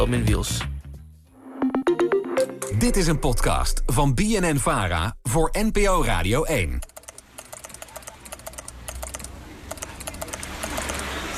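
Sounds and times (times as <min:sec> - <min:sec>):
speech: 0:00.0 - 0:00.7, 0:02.7 - 0:06.9
journalist typing busily on a computer keyboard: 0:06.8 - 0:11.2.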